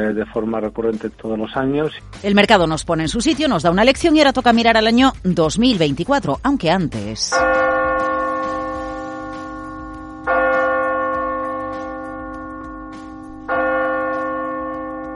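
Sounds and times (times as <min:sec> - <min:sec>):
speech: 0:00.0 - 0:07.8
clock tower bell tolling: 0:07.3 - 0:15.1.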